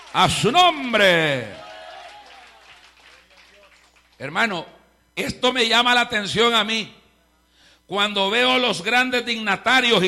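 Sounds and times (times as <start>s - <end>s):
audience applauding: 0.0s - 1.0s, 1.6s - 4.2s
speech: 0.1s - 1.6s, 4.2s - 7.0s, 7.9s - 10.0s.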